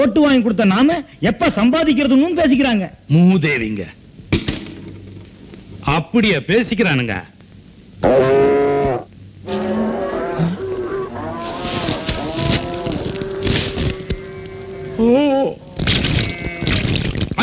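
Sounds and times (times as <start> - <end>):
speech: 0.0 - 4.0, 6.0 - 7.3, 8.0 - 8.6
cows mooing: 8.0 - 16.7.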